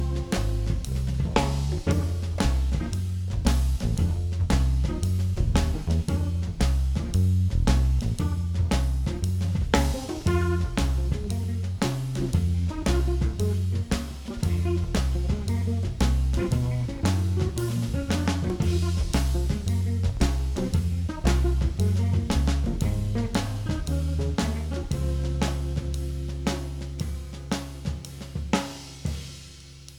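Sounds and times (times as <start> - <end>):
percussion shuffle rhythm: 0.0 - 29.9.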